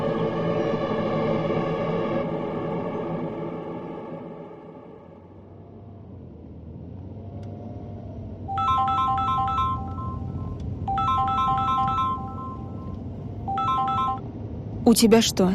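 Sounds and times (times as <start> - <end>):
low steady hum: 0.0 - 15.5
phone electronic ringtone: 8.5 - 14.3
speech: 14.9 - 15.5.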